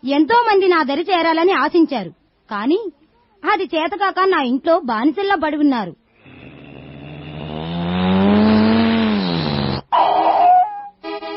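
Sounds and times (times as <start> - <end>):
speech: 0.0 - 6.0
arriving car engine drone: 6.2 - 10.3.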